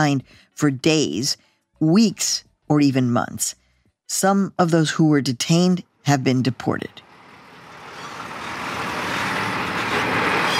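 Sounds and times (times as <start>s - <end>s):
speech: 0.0s - 7.1s
large truck driving past on a road: 6.9s - 10.5s.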